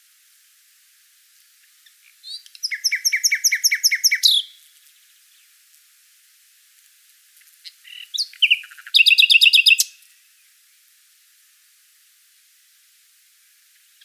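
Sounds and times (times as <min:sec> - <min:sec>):
common nightingale song: 0:01.6 - 0:05.6, 0:07.6 - 0:10.4, 0:13.8 - 0:14.0.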